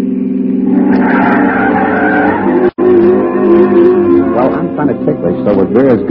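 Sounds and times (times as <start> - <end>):
old pre-war car rough engine roar: 0.0 - 6.1
old pre-war car tires squealing as it turns sharply: 0.7 - 4.8
speech: 5.4 - 6.1.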